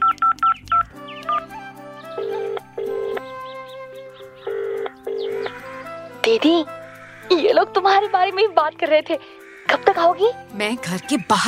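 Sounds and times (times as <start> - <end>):
steady repeating telephone ringing tone on the line: 2.2 - 3.2, 4.4 - 7.4
speech: 6.3 - 11.4.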